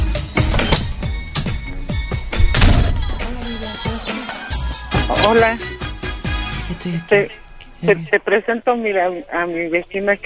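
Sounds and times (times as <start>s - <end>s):
door rattling as it swings: 0.0s - 5.2s
door latch and handle clunks: 0.3s - 3.9s
speech: 5.2s - 5.7s, 6.8s - 10.2s.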